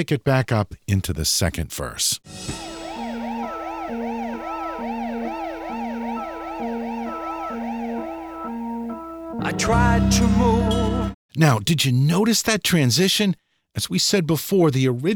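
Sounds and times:
speech: 0:00.0 - 0:02.8, 0:09.4 - 0:10.8, 0:11.4 - 0:15.1
steady wailing siren overdubbed in a song: 0:02.4 - 0:11.2
sustained two-note organ figure: 0:02.4 - 0:11.2.

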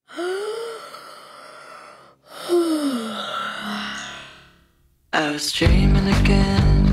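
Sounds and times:
long breathy yawns: 0:00.0 - 0:04.5
speech: 0:05.2 - 0:06.8.

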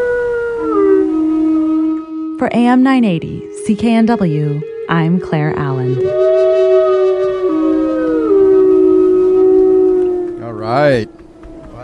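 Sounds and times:
lone wolf howling: 0:00.0 - 0:02.4, 0:05.9 - 0:11.8
speech: 0:02.4 - 0:06.4, 0:10.7 - 0:11.2.

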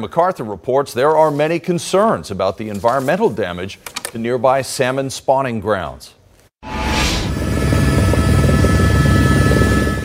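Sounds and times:
speech: 0:00.0 - 0:06.2
helicopter flying overhead: 0:07.3 - 0:10.0.

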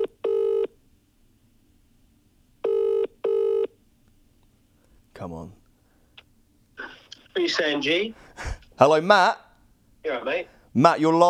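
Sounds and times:
ringback tone from an outgoing phone call: 0:00.0 - 0:00.7, 0:02.6 - 0:03.7
speech: 0:05.2 - 0:05.6, 0:07.4 - 0:09.4, 0:10.0 - 0:11.2.

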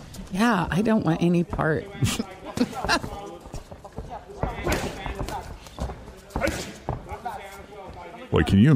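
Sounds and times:
busy background of voices and crowd noise: 0:00.0 - 0:08.7
speech: 0:00.3 - 0:03.4, 0:08.3 - 0:08.7
punches landing on boxers' bodies with heavy thuds: 0:01.5 - 0:08.3.

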